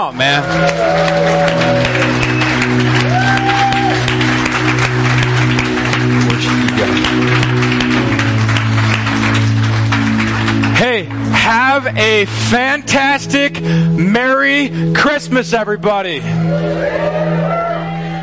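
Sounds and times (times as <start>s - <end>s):
speech: 0.0s - 2.2s, 11.8s - 17.6s
large gathering clapping and cheering: 0.0s - 13.7s, 16.3s - 18.2s
steady sustained musical tones: 0.3s - 18.2s
scattered whoops from the crowd: 0.4s - 4.4s, 16.4s - 18.2s.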